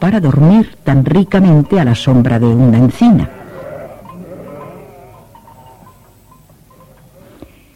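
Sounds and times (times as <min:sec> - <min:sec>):
speech: 0:00.0 - 0:03.4
soft outdoor background: 0:00.0 - 0:07.7
goats bleating: 0:02.9 - 0:07.7.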